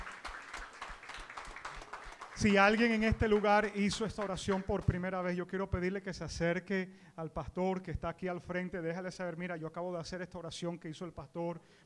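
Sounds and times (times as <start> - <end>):
church audience applauding: 0.0 - 5.0
speech: 2.4 - 11.8.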